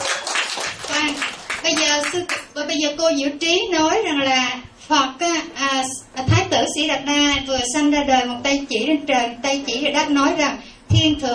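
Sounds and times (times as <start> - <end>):
audience applauding: 0.0 - 2.4
speech: 1.0 - 11.3.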